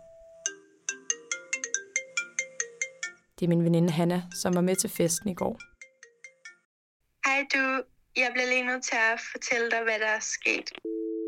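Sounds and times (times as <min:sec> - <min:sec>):
mobile phone ringtone with bell-like plucked melody: 0:00.0 - 0:03.3, 0:04.4 - 0:06.7
speech: 0:03.4 - 0:05.7, 0:07.6 - 0:11.0.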